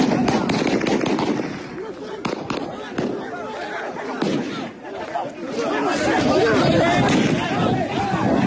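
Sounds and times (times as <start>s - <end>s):
gunshots from regime forces firing on protesters in Gachsaran Iran: 0.0s - 3.5s, 4.1s - 4.8s, 6.8s - 8.4s
agitated crowd of young job seekers shouting and talking: 0.0s - 8.4s.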